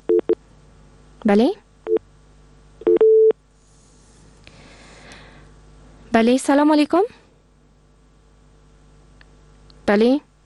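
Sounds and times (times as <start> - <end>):
speech: 1.2 - 1.6, 6.2 - 7.2, 9.9 - 10.3
telephone busy tone after a dropped call: 2.8 - 3.3.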